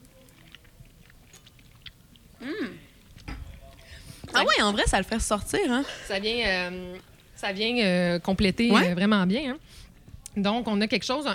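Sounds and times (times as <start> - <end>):
chewing of cheese: 0.0 - 4.3, 6.6 - 7.4
faint moist mouth clicks and smacks: 0.2 - 3.3
speech: 4.4 - 9.8, 10.4 - 11.3.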